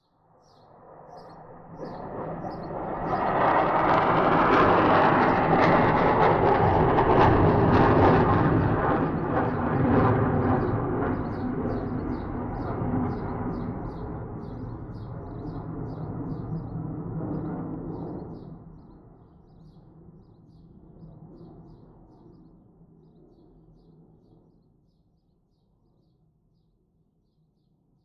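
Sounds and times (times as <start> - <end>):
airplane flying by: 0.7 - 22.6.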